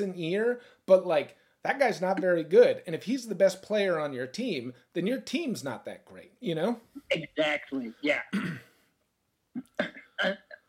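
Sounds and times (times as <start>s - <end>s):
speech: 0.0s - 8.7s, 9.6s - 10.6s
two people coughing: 8.3s - 8.8s, 9.6s - 10.6s.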